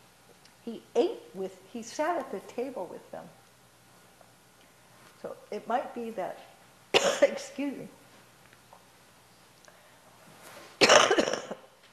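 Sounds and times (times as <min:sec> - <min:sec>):
speech: 0:00.7 - 0:03.4, 0:05.5 - 0:08.0
harsh cough: 0:07.0 - 0:07.4, 0:10.8 - 0:11.7.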